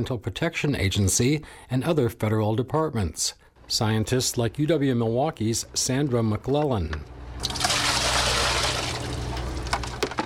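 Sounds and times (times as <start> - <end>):
speech: 0.0 - 7.6
scattered drips and splashes of water: 7.0 - 9.9
water pouring out of a bucket: 7.4 - 10.2.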